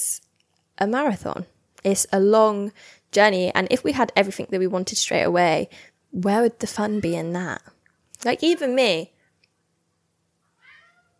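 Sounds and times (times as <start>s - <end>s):
speech: 0.8s - 9.1s
cat meowing: 10.5s - 11.1s.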